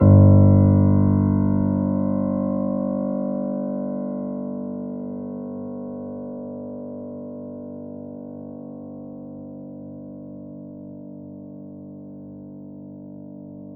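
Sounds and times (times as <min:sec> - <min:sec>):
grand piano note G0 played softly: 0:00.0 - 0:03.3.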